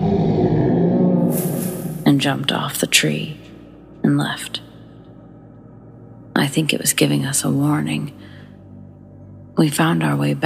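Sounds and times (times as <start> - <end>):
deep guttural creature roar sound effect: 0.0 - 2.0
speech: 2.2 - 3.4, 4.1 - 4.7, 6.4 - 8.3, 9.6 - 10.4.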